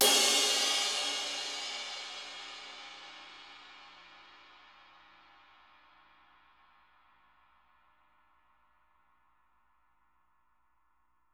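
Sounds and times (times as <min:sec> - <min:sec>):
drum kit: 0:00.0 - 0:03.2.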